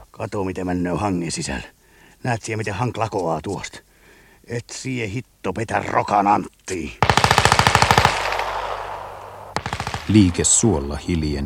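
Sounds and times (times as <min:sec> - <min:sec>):
speech: 0:00.2 - 0:03.8, 0:04.4 - 0:07.2, 0:10.1 - 0:11.4
submachine gun firing bursts: 0:07.0 - 0:10.7
gunshot echoes: 0:07.0 - 0:11.2.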